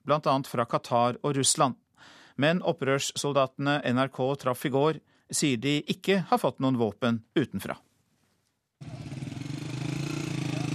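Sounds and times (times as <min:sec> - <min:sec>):
speech: 0:00.1 - 0:07.9
moped engine puttering as young men ride past in northern Syria: 0:08.8 - 0:10.7.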